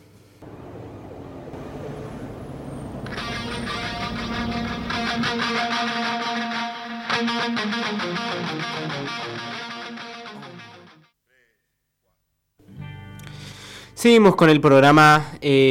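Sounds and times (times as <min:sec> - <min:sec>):
loud distorted hard rock track with guitars and drums: 0:03.1 - 0:10.9
speech: 0:05.2 - 0:06.0, 0:07.4 - 0:09.7, 0:14.0 - 0:15.6.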